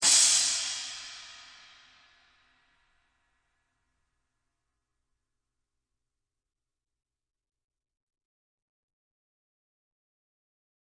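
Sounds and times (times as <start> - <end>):
splash cymbal of a live drum kit: 0.0 - 2.5.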